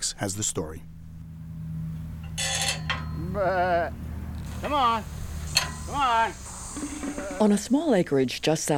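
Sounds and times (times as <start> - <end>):
speech: 0.1 - 1.0, 3.3 - 8.7
white-faced sheep bleating on a small acreage in Oklahoma: 3.2 - 4.0, 5.9 - 7.6.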